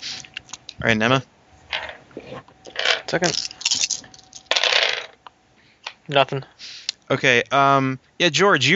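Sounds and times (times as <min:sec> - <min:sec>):
speech: 0:00.8 - 0:01.4, 0:03.1 - 0:03.5, 0:06.1 - 0:08.7
dice clattering and tumbling across a hard surface: 0:02.7 - 0:05.2.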